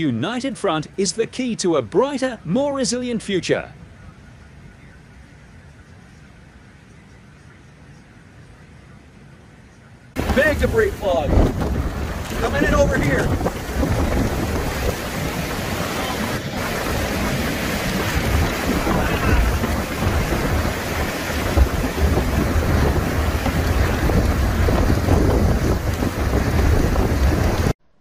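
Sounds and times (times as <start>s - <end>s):
speech: 0.0s - 3.8s
storm wind blasting: 10.2s - 27.8s.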